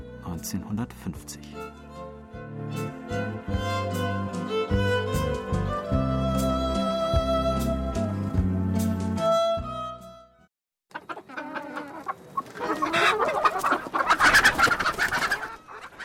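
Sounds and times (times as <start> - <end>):
melodic music: 0.1 - 10.3
speech: 0.3 - 1.8, 2.6 - 3.6
flock of hens clucking and squawking: 10.9 - 16.0.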